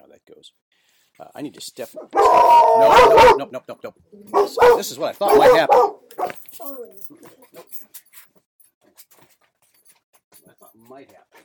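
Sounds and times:
speech: 0.3s - 8.0s, 10.8s - 11.4s
dog whimpering in high-pitched whining bursts: 2.1s - 3.4s, 6.6s - 7.6s.

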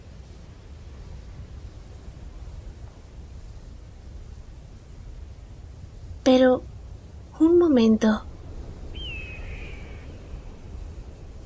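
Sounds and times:
steady low rumble of wind or outdoor noise: 0.0s - 11.4s
speech: 6.3s - 6.7s, 7.4s - 8.3s
eagle scream: 8.9s - 11.2s.

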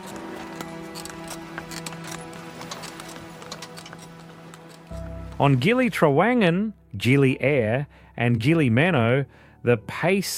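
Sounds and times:
horse cart hooves clip-clopping on a sandy path: 0.0s - 6.0s
horse cart wheels rumbling on a sandy path: 0.0s - 6.0s
speech: 5.4s - 10.3s.

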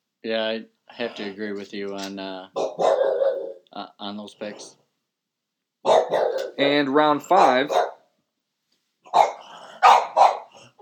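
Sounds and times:
speech: 0.2s - 4.8s, 6.1s - 7.9s
dog barking: 2.6s - 3.6s, 5.8s - 6.6s, 7.4s - 8.1s, 9.1s - 10.7s.

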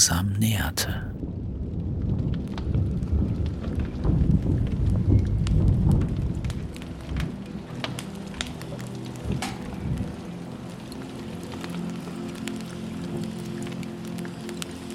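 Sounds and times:
speech: 0.0s - 1.2s, 4.4s - 4.9s
deep rolling rumble of thunder: 1.1s - 7.4s
howling wind: 1.2s - 11.4s
rain pattering against castle windows: 1.6s - 14.9s.

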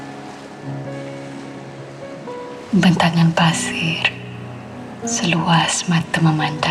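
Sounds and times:
ocean waves breaking on a beach: 0.0s - 6.7s
speech: 2.7s - 4.2s, 5.0s - 6.7s.

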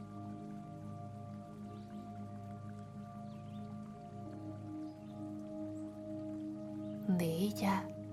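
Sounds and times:
water trickling and splashing from a stone fountain in a garden: 0.0s - 8.1s
speech: 7.1s - 8.0s.

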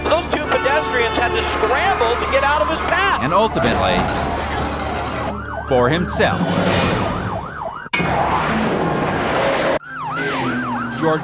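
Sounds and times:
car engine and road noise: 0.0s - 11.2s
police car sirens wailing during high-speed pursuit: 0.0s - 11.2s
speech: 1.2s - 4.4s, 5.7s - 7.0s, 11.0s - 11.2s.

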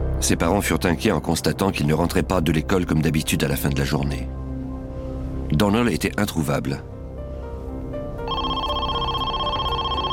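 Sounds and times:
speech: 0.2s - 4.4s, 5.5s - 6.9s
telephone ringing: 8.3s - 10.1s.

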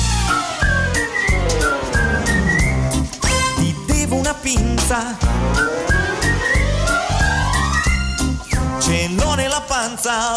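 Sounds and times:
rhythmic instrumental backing with thumping beat: 0.0s - 9.6s
person whistling a bouncy melody: 0.3s - 4.1s, 5.6s - 8.1s
speech: 9.8s - 10.3s.

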